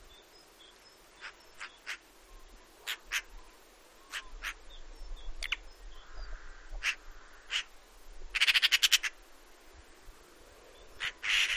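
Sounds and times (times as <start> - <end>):
Eurasian magpie harsh calls and rattling chatter: 2.9 - 3.3, 4.1 - 4.6, 6.8 - 7.7, 8.4 - 9.2, 11.0 - 11.5.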